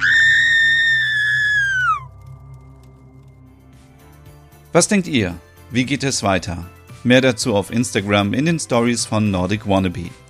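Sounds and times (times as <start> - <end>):
woman screaming in fright: 0.0 - 2.1
speech: 4.7 - 10.2.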